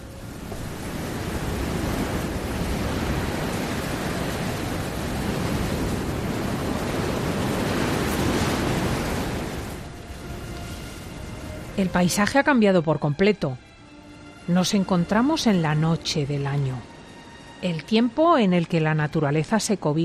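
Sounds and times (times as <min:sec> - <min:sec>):
wind blowing through a wide-open window: 0:00.0 - 0:11.8
speech: 0:11.8 - 0:13.6, 0:14.5 - 0:16.9, 0:17.6 - 0:20.0.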